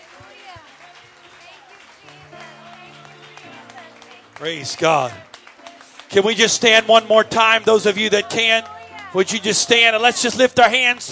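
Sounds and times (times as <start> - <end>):
audience clapping hands in praise: 0.0 - 11.1
sustained organ-like notes: 2.2 - 11.1
speech: 4.4 - 5.3, 6.1 - 11.1.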